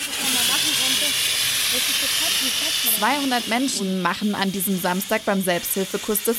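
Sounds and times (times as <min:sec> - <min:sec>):
course participants' faint voices murmuring: 0:00.0 - 0:04.4
water-filled fire extinguisher spraying on a disaster-relief training ground in Tuntenhausen: 0:00.0 - 0:06.3
speech: 0:03.0 - 0:06.3.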